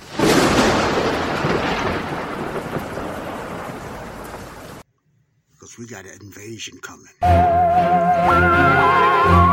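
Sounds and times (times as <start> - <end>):
steady rain: 0.0 - 4.8
thunder crack and rumble: 0.0 - 4.8
speech: 5.8 - 9.4.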